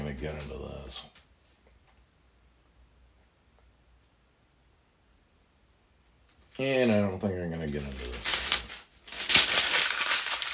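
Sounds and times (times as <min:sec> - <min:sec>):
speech: 0:00.2 - 0:01.2, 0:06.6 - 0:08.4
paper being crumpled by hand: 0:07.7 - 0:10.5.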